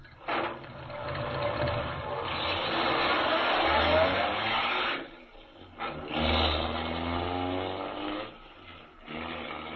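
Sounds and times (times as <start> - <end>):
car engine revving and speeding away along a forest road: 0.3 - 9.7.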